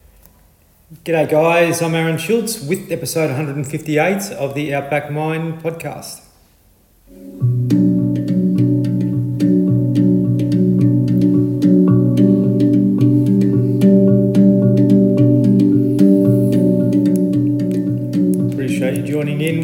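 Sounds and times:
speech: 0.9 - 6.2
handpan music played as an intro theme: 7.1 - 19.6.

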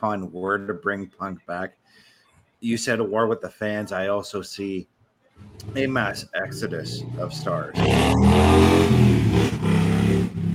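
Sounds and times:
speech: 0.0 - 9.6
motorcycle engine revving past: 6.6 - 10.5.

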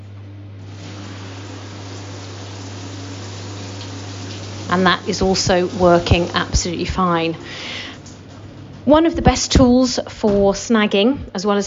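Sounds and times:
low mechanical hum: 0.0 - 11.6
shower water gushing: 0.6 - 8.4
speech: 4.7 - 7.8, 8.8 - 11.6.

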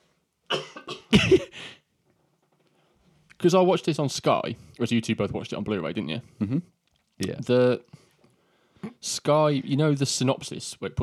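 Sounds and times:
person coughing harshly: 0.5 - 1.8
speech: 3.4 - 8.0, 8.9 - 11.0.

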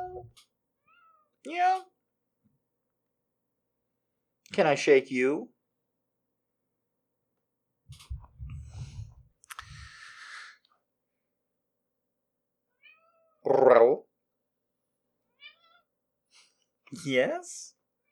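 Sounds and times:
cat meowing: 0.0 - 1.3, 12.8 - 13.6, 15.3 - 15.9
speech: 1.4 - 2.0, 4.5 - 5.5, 13.5 - 14.1, 16.9 - 17.8.

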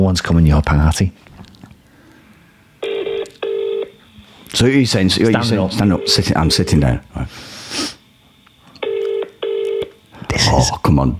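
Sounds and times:
speech: 0.0 - 1.3, 4.5 - 8.0, 10.6 - 11.1
telephone dialing tones: 2.8 - 4.0, 8.8 - 10.0.

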